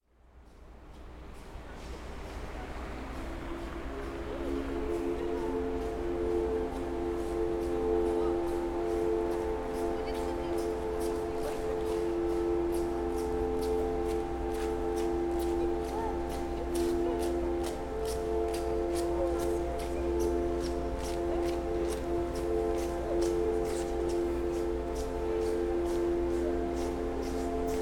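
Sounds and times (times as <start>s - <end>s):
factory hooter: 1.4s - 27.8s.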